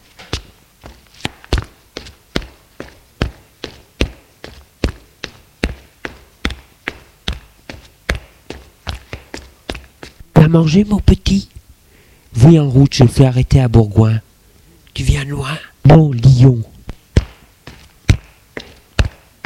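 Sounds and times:
two people climbing wooden stairs of a small suburban house: 0.2 - 10.3, 17.2 - 19.4
speech: 10.5 - 11.5, 12.4 - 14.3, 15.0 - 16.7.

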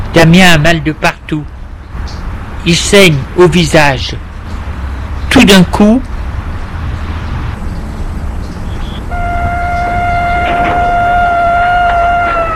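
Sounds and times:
speech: 0.2 - 1.6, 2.6 - 4.3, 5.3 - 6.1
police car siren wailing in the street: 8.8 - 12.5.

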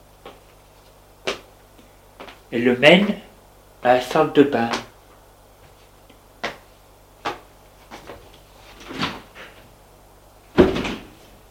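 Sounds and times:
speech: 2.5 - 4.8
bedroom door closing with a solid thud: 10.6 - 11.2.

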